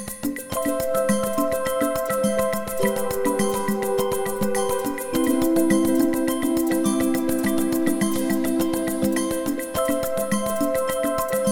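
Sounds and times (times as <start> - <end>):
marimba melody: 0.3 - 11.5.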